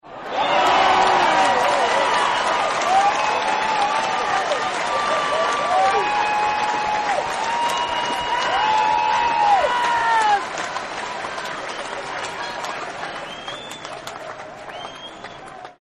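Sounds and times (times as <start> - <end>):
large crowd cheering: 0.0 - 15.8.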